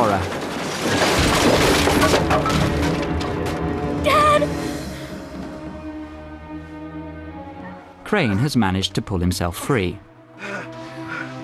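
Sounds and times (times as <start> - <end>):
wood splintering: 0.0 - 4.0
heavy rumbling debris tumbling: 0.0 - 5.7
office building collapsing with walls crashing in: 0.0 - 6.2
speech: 8.1 - 10.1.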